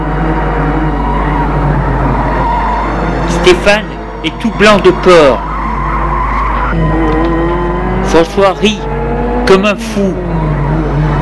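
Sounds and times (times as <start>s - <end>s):
car driving fast overtaking other cars: 0.0s - 11.2s
speech: 3.5s - 5.5s, 8.1s - 8.9s, 9.5s - 10.3s.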